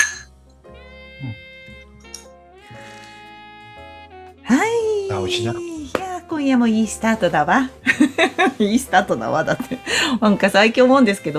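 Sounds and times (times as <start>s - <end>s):
glasses clinking in a toast: 0.0s - 0.3s, 1.9s - 3.2s
speech: 5.3s - 5.7s, 6.3s - 11.3s.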